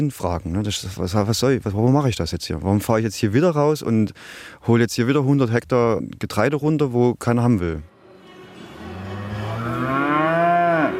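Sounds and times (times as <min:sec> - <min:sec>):
speech: 0:00.0 - 0:07.9
cow mooing at an agricultural fair: 0:08.4 - 0:10.9.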